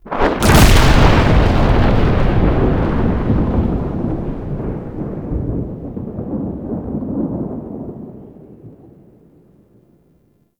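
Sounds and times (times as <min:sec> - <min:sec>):
thunder clap in the sky: 0:00.0 - 0:08.3.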